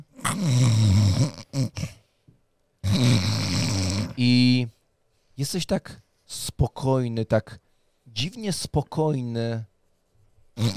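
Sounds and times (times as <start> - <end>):
person vocally imitating a dwarf's loud rumbling snores: 0.0 - 2.0, 2.8 - 4.5, 10.6 - 10.7
speech: 0.4 - 1.8, 5.4 - 9.7, 10.6 - 10.7.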